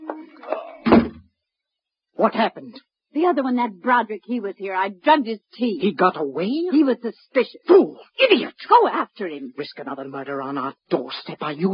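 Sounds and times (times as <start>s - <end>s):
front door swinging with a heavy wooden thud: 0.8s - 1.2s
speech: 2.2s - 11.7s.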